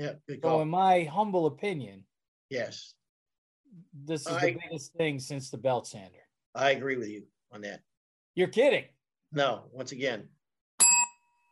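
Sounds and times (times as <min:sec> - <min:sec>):
speech: 0:00.0 - 0:03.0, 0:03.7 - 0:10.4
single bright bell strike: 0:10.8 - 0:11.5.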